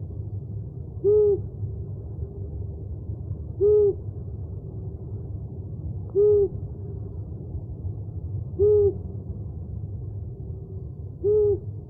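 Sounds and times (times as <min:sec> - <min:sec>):
steady low background hum: 0:00.0 - 0:11.8
owl hooting: 0:01.0 - 0:01.5, 0:03.6 - 0:04.0, 0:06.1 - 0:06.6, 0:08.6 - 0:09.0, 0:11.2 - 0:11.7.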